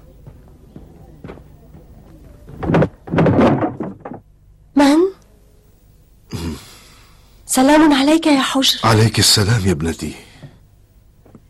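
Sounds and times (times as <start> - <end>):
door being opened: 2.6 - 4.3
speech: 7.6 - 10.3.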